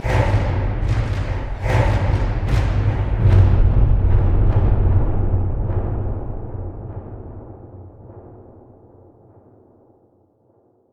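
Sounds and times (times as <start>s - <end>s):
drums: 0.0s - 10.8s.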